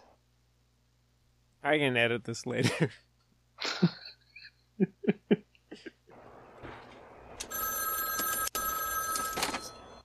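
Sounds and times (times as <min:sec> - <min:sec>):
speech: 0:01.6 - 0:04.0, 0:04.8 - 0:05.4
laughter: 0:02.6 - 0:03.0, 0:03.6 - 0:06.0
telephone bell ringing: 0:07.4 - 0:10.0.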